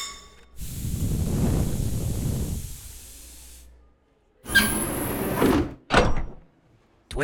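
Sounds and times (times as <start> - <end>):
airlock door opening with pneumatic hiss: 0.5 - 3.7, 4.4 - 5.6.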